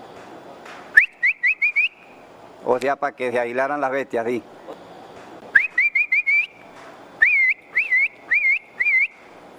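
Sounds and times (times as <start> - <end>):
person whistling a herding call to a dairy cow: 1.0 - 2.2, 5.5 - 6.6, 7.2 - 9.3
speech: 2.6 - 4.6.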